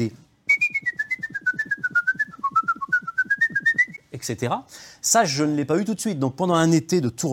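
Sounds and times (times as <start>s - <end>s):
speech: 0.0s - 0.2s, 4.3s - 7.3s
person whistling a rapid lively classical tune: 0.5s - 4.0s.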